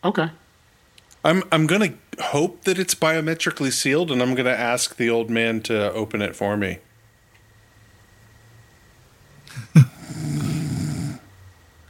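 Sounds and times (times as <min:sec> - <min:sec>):
speech: 0:00.0 - 0:00.4, 0:01.2 - 0:06.9
old man snoring: 0:09.5 - 0:11.3.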